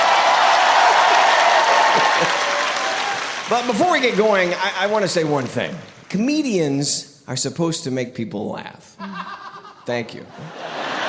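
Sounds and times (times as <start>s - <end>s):
large audience applauding: 0.0s - 6.2s
laughter: 0.9s - 2.7s, 9.0s - 11.0s
speech: 3.5s - 10.8s.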